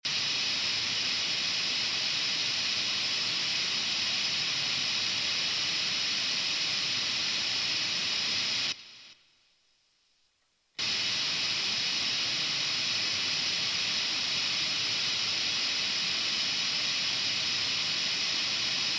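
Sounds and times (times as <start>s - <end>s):
pink noise: 0.1s - 9.2s, 10.8s - 18.9s.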